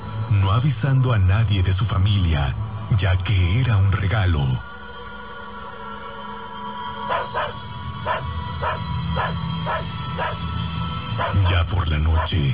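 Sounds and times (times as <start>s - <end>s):
speech: 0.3s - 4.7s
dog barking: 7.1s - 10.4s, 11.2s - 12.4s.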